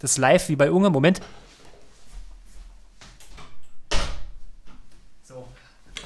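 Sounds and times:
speech: 0:00.0 - 0:01.4
door shutting with a solid thud: 0:03.2 - 0:04.8.

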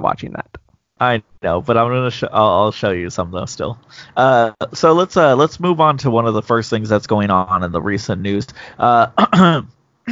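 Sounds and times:
speech: 0:00.1 - 0:10.1
person clearing throat: 0:09.1 - 0:10.1.

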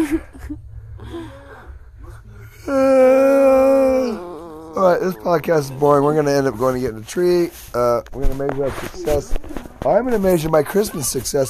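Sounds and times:
person breathing while stretching: 0:00.6 - 0:02.7
person yawning while stretching: 0:02.4 - 0:05.3
speech: 0:02.7 - 0:03.0, 0:05.0 - 0:11.4.

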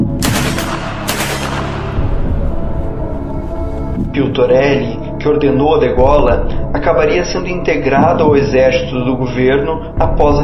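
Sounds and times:
gunshots with long rumble: 0:00.0 - 0:02.8
speech: 0:04.2 - 0:10.4.

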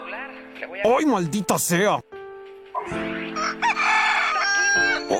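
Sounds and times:
speech: 0:00.8 - 0:02.0
neighbour's rooster crowing: 0:03.3 - 0:05.1.

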